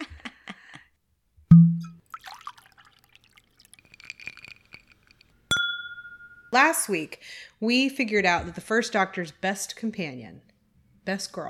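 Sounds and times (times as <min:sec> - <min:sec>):
whiskey glasses clinking and tapping: 0:01.5 - 0:02.7, 0:03.6 - 0:06.5
small drippy liquid sounds: 0:01.5 - 0:05.3
speech: 0:06.5 - 0:10.5, 0:11.1 - 0:11.4.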